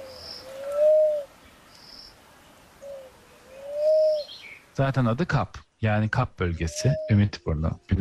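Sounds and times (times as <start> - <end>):
Cape turtle dove cooing: 0.0 - 1.4, 2.8 - 4.6, 6.7 - 7.3
crickets chirping: 0.0 - 4.8
speech: 4.8 - 7.9.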